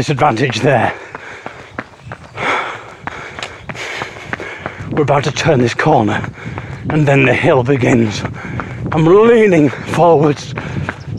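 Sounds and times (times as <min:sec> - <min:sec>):
speech: 0:00.0 - 0:01.2, 0:05.0 - 0:10.8
running footsteps: 0:00.0 - 0:11.1
heavy breathing with snorting exhales: 0:00.6 - 0:05.0, 0:06.1 - 0:06.9, 0:08.2 - 0:08.9, 0:09.6 - 0:11.1.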